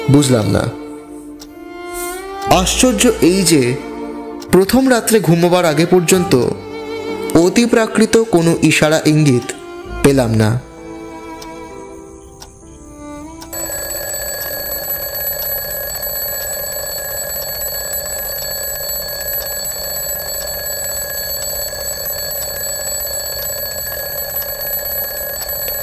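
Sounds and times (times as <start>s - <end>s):
speech: 0.1s - 0.8s, 2.5s - 3.9s, 4.5s - 6.6s, 7.3s - 10.7s
jangling alarm clock ringing in a dark bedroom at night: 13.5s - 25.8s.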